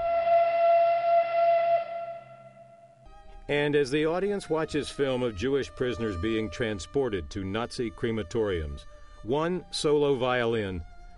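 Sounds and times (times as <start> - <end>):
mournful train whistle wailing: 0.0 - 3.0
speech: 3.5 - 10.9.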